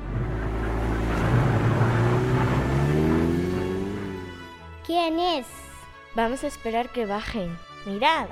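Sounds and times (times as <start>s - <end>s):
limousine engine humming while driving past: 0.0s - 4.7s
speech: 4.9s - 5.6s, 6.2s - 8.2s.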